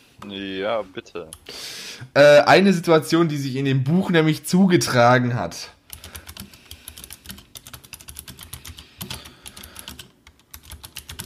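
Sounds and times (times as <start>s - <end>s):
speech: 0.2s - 5.8s
chat message typed on a computer keyboard: 5.9s - 11.2s.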